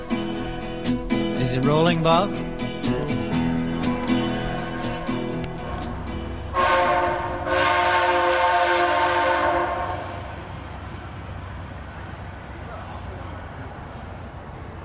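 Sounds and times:
passing train rumbling and clanking: 0:00.0 - 0:14.8
speech: 0:00.9 - 0:03.4
train horn: 0:05.6 - 0:10.6.

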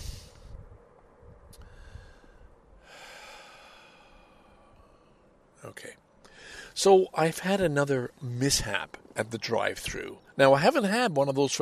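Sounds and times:
man drawing breath with snort-like intakes of air: 0:01.6 - 0:05.4, 0:06.2 - 0:06.8
speech: 0:05.6 - 0:06.0, 0:06.8 - 0:11.6.

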